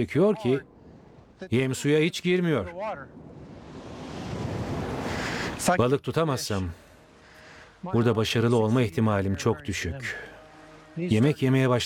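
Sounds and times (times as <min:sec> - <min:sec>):
speech: 0:00.0 - 0:00.7, 0:01.4 - 0:03.3, 0:05.6 - 0:06.8, 0:07.8 - 0:10.3, 0:11.0 - 0:11.8
strong wind at the shore: 0:02.7 - 0:05.8
surf at a shore: 0:03.3 - 0:05.7.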